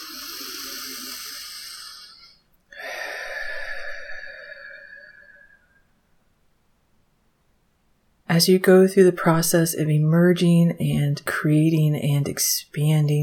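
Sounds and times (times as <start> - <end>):
deep breath in through the nose and out through the mouth: 0.0 - 6.0
speech: 8.3 - 13.2.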